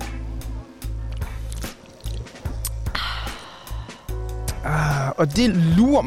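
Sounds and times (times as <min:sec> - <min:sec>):
low steady hum: 0:00.0 - 0:06.0
sipping and slurping of beer at the microphone: 0:01.1 - 0:04.0
breathy gulps of beer: 0:01.5 - 0:05.2
speech: 0:04.6 - 0:06.0.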